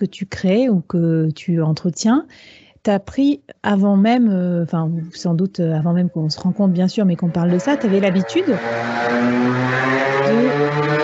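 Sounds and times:
speech: 0:00.0 - 0:11.0
small scooter engine passing by: 0:07.2 - 0:11.0.

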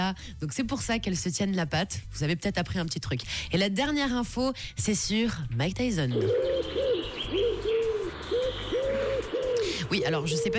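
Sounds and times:
speech: 0:00.0 - 0:07.7, 0:09.9 - 0:10.5
pigeon cooing: 0:06.1 - 0:10.5.

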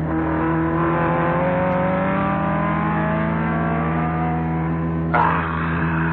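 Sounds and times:
car engine revving during road race: 0:00.0 - 0:06.1.

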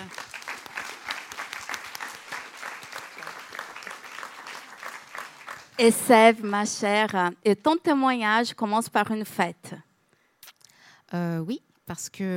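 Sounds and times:
audience applause: 0:00.0 - 0:06.6
speech: 0:05.8 - 0:09.8, 0:11.1 - 0:12.3.

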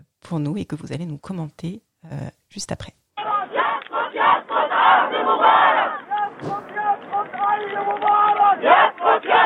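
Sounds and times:
speech: 0:00.3 - 0:03.0
large protest crowd chanting Arabic slogans against Mubarak: 0:03.2 - 0:09.4.

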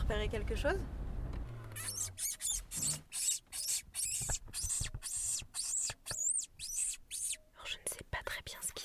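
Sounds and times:
speech: 0:00.1 - 0:01.0
man imitating wounded rabbit or mouse squeaks: 0:01.7 - 0:07.5.

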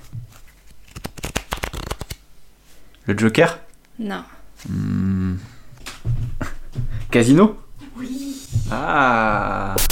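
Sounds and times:
deck of playing cards being shuffled: 0:00.0 - 0:02.2
speech: 0:03.1 - 0:05.5, 0:07.1 - 0:09.8.

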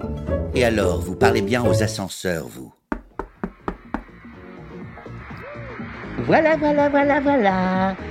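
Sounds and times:
speech: 0:00.6 - 0:02.8, 0:06.3 - 0:08.0
sharp knocks on a door: 0:02.9 - 0:04.2.

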